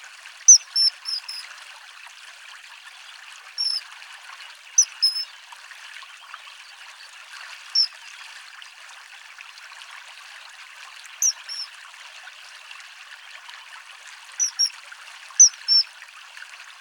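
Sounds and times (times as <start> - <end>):
stream trickling: 0.0 - 16.8
common kingfisher calling with piercing whistles: 0.5 - 1.4, 3.6 - 3.8, 4.8 - 5.3, 11.2 - 11.7, 14.4 - 14.7, 15.4 - 15.8.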